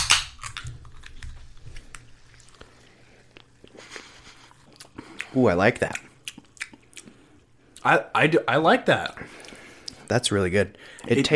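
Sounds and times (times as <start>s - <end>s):
can of apple-flavored zero-sugar drink cracking open: 0.0s - 1.3s
speech: 5.3s - 6.0s, 7.8s - 9.4s, 10.1s - 11.3s.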